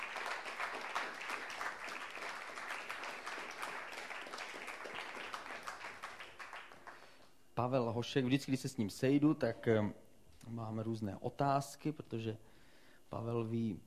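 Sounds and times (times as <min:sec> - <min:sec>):
audience clapping to welcome a guest: 0:00.0 - 0:07.3
speech: 0:07.6 - 0:12.5, 0:13.1 - 0:13.8.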